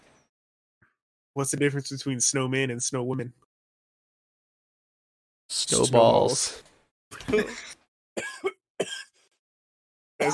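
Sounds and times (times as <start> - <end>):
speech: 1.4 - 3.4, 5.7 - 6.7, 7.3 - 7.7
harsh coughs: 7.2 - 9.2.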